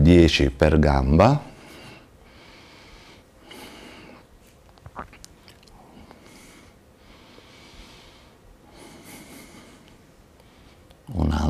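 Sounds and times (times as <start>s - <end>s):
speech: 0.1s - 1.5s
slow breathing in and out during a leg exercise: 1.5s - 4.3s, 5.7s - 11.0s.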